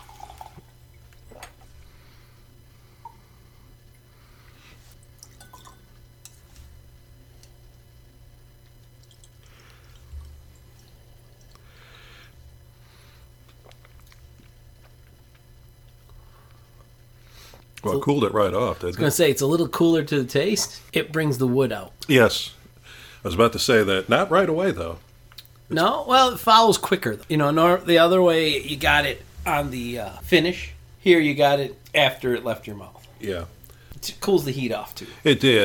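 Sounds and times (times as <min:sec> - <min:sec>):
whiskey poured into a glass: 0:00.0 - 0:00.7, 0:05.1 - 0:06.0, 0:09.0 - 0:09.5
steady low hum: 0:00.0 - 0:35.6
soft drips of water into whiskey: 0:05.0 - 0:06.0, 0:08.8 - 0:11.6
speech: 0:17.8 - 0:22.6, 0:23.2 - 0:25.1, 0:25.7 - 0:35.6.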